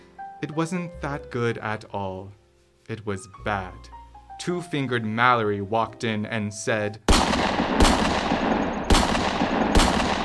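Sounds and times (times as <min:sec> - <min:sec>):
speech: 0:00.4 - 0:07.0
gunshots: 0:07.1 - 0:10.2.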